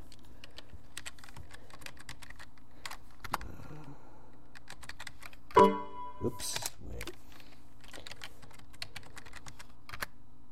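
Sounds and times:
typing on a computer keyboard entering a command on a PC: 0:00.0 - 0:03.4, 0:04.5 - 0:05.6, 0:07.8 - 0:10.2
speech: 0:05.6 - 0:06.7.

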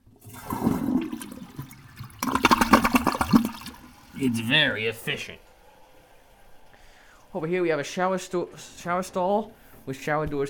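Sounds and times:
American Standard toilet flushing: 0:00.0 - 0:05.9
speech: 0:04.2 - 0:05.5, 0:07.4 - 0:10.4.

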